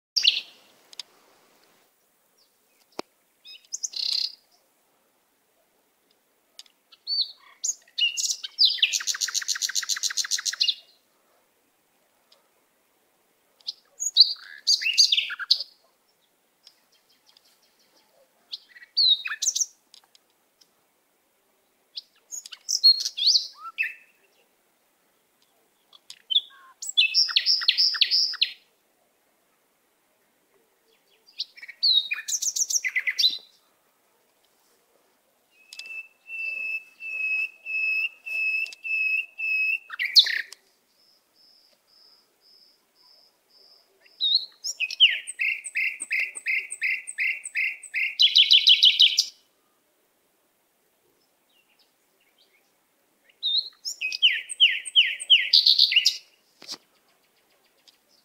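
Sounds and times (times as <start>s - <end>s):
natural bird sounds: 0.2s - 0.7s, 2.0s - 4.7s, 6.6s - 11.0s, 13.6s - 19.8s, 21.9s - 24.5s, 25.1s - 28.6s, 30.9s - 33.7s, 35.5s - 49.4s, 51.2s - 58.2s.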